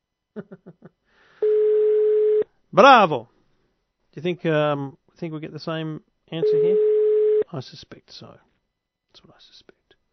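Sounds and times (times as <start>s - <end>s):
speech: 0.4s - 1.0s, 2.7s - 3.3s, 4.2s - 6.9s, 7.5s - 8.5s, 9.2s - 9.8s
steady telephone line ringing tone: 1.4s - 2.4s, 6.4s - 7.4s
electronic telephone dialing beeps: 6.4s - 7.4s.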